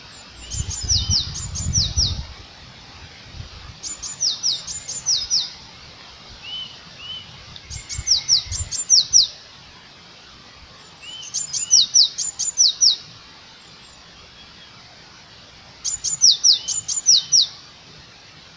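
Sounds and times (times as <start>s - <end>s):
Eurasian blue tit repeating a high call phrase: 0.0s - 2.3s, 3.8s - 5.6s, 6.4s - 9.4s, 10.8s - 13.1s, 15.8s - 17.6s.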